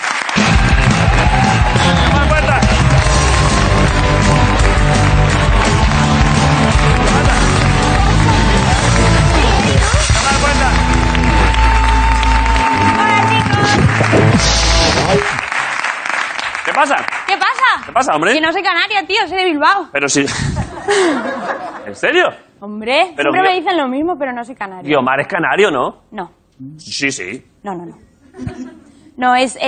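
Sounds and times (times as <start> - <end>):
studio audience applause and cheering: 0.0 - 18.3
music-like tones: 0.4 - 15.5
speech: 16.8 - 17.2, 18.0 - 29.6
laughter: 20.3 - 22.1, 28.2 - 29.0.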